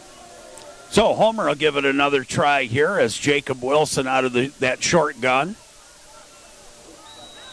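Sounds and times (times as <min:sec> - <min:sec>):
broad crowd noise at a football game: 0:00.0 - 0:07.5
speech: 0:00.9 - 0:05.6
referee's whistle at a football game: 0:07.0 - 0:07.5.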